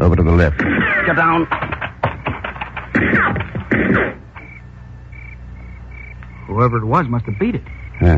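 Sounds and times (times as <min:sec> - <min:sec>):
speech: 0:00.0 - 0:01.7, 0:06.5 - 0:08.1
gunshots in the countryside: 0:00.5 - 0:04.3.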